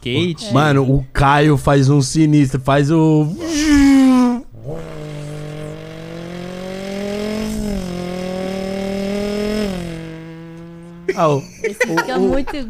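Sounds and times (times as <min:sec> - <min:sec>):
speech: 0:00.0 - 0:04.0, 0:11.2 - 0:12.6
person beatboxing vehicle engine revving: 0:03.4 - 0:09.9
laughter: 0:11.1 - 0:12.6.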